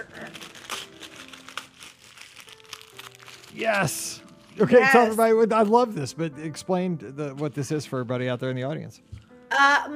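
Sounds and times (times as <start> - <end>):
tissue paper crinkling as a gift is unwrapped: 0.0 - 6.0
speech: 3.6 - 9.9.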